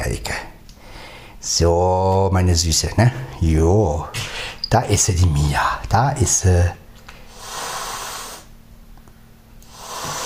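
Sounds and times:
faint low hum: 0:00.0 - 0:10.2
speech: 0:01.4 - 0:06.8
cat hissing at another cat while perched on a coat rack: 0:07.3 - 0:08.5, 0:09.7 - 0:10.2.

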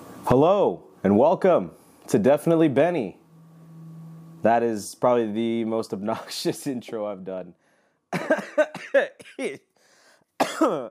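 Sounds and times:
speech: 0:00.2 - 0:03.2, 0:04.4 - 0:09.7, 0:10.6 - 0:10.9
person coughing after a workout: 0:08.2 - 0:09.5, 0:10.4 - 0:10.9.

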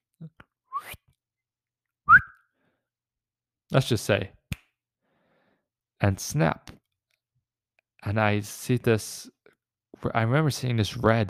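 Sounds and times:
person whistling through their lips: 0:00.7 - 0:01.0, 0:02.1 - 0:02.4
speech: 0:03.7 - 0:04.4, 0:06.0 - 0:06.8, 0:08.0 - 0:09.4, 0:10.0 - 0:11.2.

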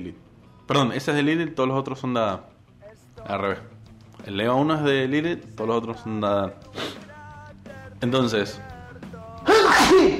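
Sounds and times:
speech: 0:00.0 - 0:02.5, 0:03.2 - 0:07.0, 0:08.0 - 0:08.7
loud sneeze after an indrawn breath: 0:09.5 - 0:10.1.

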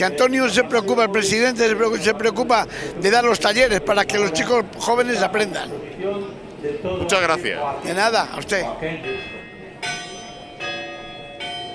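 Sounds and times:
speech: 0:00.0 - 0:09.4
church bells rung by hand at a public bell-ringing event in Zamora Spain: 0:08.9 - 0:11.7.

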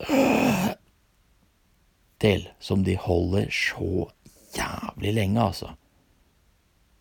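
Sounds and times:
voice imitating a royal's final dying breath: 0:00.0 - 0:00.8
speech: 0:02.2 - 0:05.8.

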